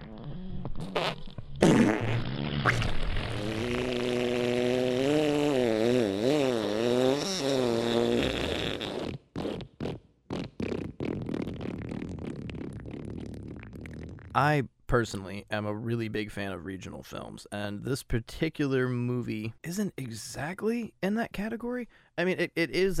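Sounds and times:
long drawn-out fart with a wavering buzzy pitch: 0.0 - 14.5
speech: 0.8 - 3.0, 14.4 - 22.9.

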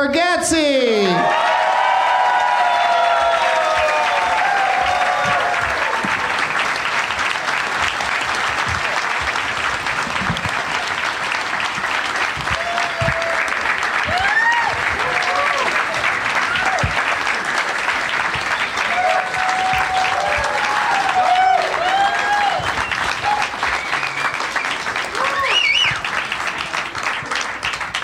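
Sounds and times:
whoops and cheers: 1.0 - 6.4, 12.4 - 17.1, 18.6 - 26.1
large indoor audience applause: 1.0 - 28.0.

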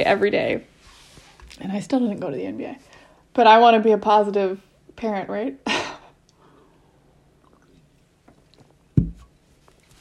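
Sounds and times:
speech: 0.0 - 0.7, 1.6 - 5.8
person swallowing a mouthful of water: 7.2 - 8.9.

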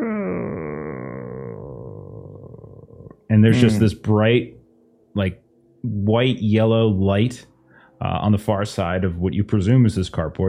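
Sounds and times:
voice imitating a creaking door: 0.0 - 2.7
speech: 3.3 - 4.6, 5.2 - 10.4.

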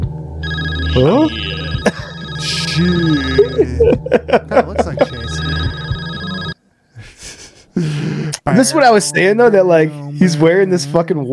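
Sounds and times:
low droning background: 0.0 - 6.6
telephone ringing: 0.4 - 3.8, 4.8 - 6.6
speech: 1.0 - 5.2, 8.6 - 11.3
laughter: 1.5 - 5.9, 7.0 - 8.4.

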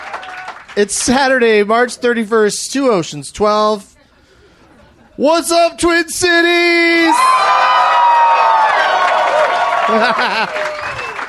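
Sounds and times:
comedy club audience in Minneapolis Minnesota cheering and clapping: 0.0 - 1.0, 7.0 - 11.2
speech: 0.8 - 3.9, 5.2 - 7.8, 9.9 - 10.7
laughter: 4.0 - 5.2, 9.5 - 11.2
audience whoops and shouts: 7.0 - 11.2.

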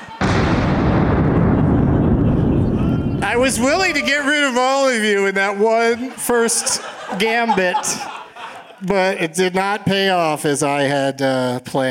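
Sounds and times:
cannon blast: 0.0 - 4.8
heavy roar and rumble: 0.2 - 4.3
speech: 3.4 - 8.2, 8.8 - 11.9
laughter: 5.6 - 10.2.

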